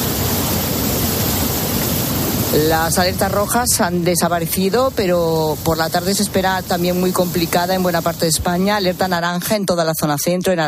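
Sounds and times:
swollen river of floodwater rushing: 0.0s - 9.5s
speech: 2.5s - 10.6s.

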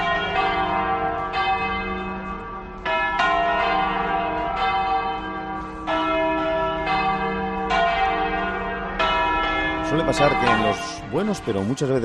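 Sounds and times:
church bells of Madrid churches pealing at noon: 0.0s - 12.0s
speech: 10.0s - 12.0s.

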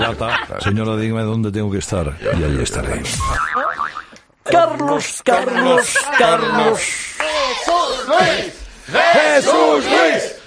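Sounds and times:
laughter: 0.0s - 0.8s, 5.3s - 7.0s
speech: 0.0s - 10.4s
several voices cheering and shouting: 4.5s - 10.4s.

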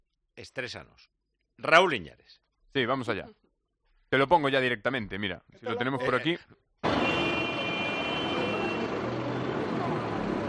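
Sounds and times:
speech: 0.4s - 3.4s, 4.1s - 7.2s
city traffic noise: 6.8s - 10.4s.

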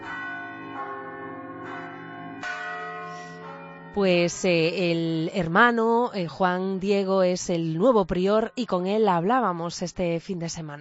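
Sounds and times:
large cathedral bells in Santiago pealing: 0.0s - 5.0s
speech: 4.0s - 10.7s.

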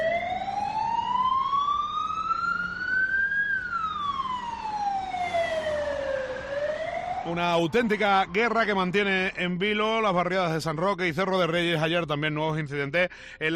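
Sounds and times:
police siren wailing: 0.0s - 10.8s
rumble of road traffic: 0.0s - 11.2s
speech: 7.3s - 13.5s.

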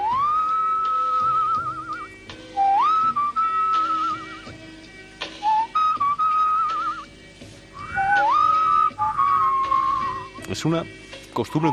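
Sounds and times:
person whistling a tune: 0.0s - 4.6s, 5.4s - 7.1s, 7.8s - 10.4s
speech: 10.6s - 11.7s.

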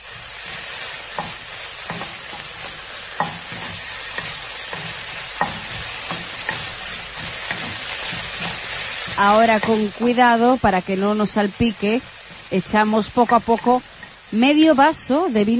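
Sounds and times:
utensil scraping and stirring in a pan: 0.0s - 10.4s, 12.1s - 14.3s
garlic, onion and grated tomato sizzling in a pan: 0.0s - 15.5s
speech: 9.2s - 15.5s.

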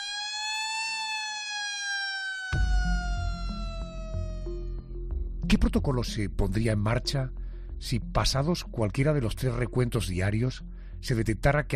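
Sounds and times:
prison siren wailing on a steady slowly falling tone: 0.0s - 5.1s
speech: 5.5s - 11.7s.

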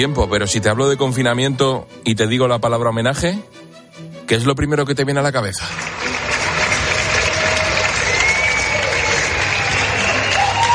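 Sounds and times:
speech: 0.0s - 3.6s, 4.3s - 6.1s
crowd applause from balconies: 5.6s - 10.7s.

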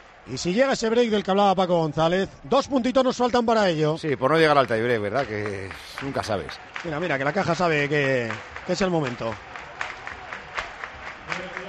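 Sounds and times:
speech: 0.2s - 9.5s
crowd clapping hands rhythmically: 4.2s - 11.6s.

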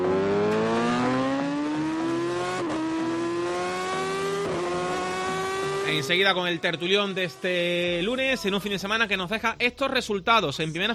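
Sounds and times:
motorcycle engine revving through gear changes: 0.0s - 8.0s
speech: 5.9s - 10.9s.

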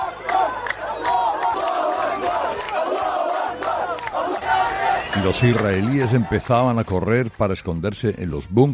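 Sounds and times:
crowd chanting praise to God in unison: 0.0s - 6.4s
many voices shouting together with sharp rising calls: 0.0s - 6.4s
large crowd cheering: 0.0s - 7.4s
large crowd applauding: 0.0s - 7.5s
speech: 5.2s - 8.7s.

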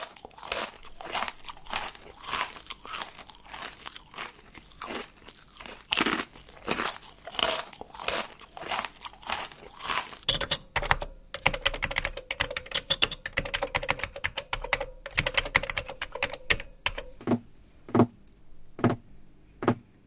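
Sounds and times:
crunchy chewing of food: 0.0s - 11.0s
typing on a computer keyboard: 10.3s - 18.1s.

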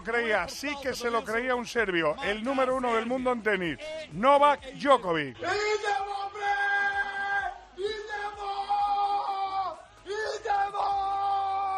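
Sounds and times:
speech: 0.0s - 6.4s
man shouting in celebration: 5.4s - 11.7s.

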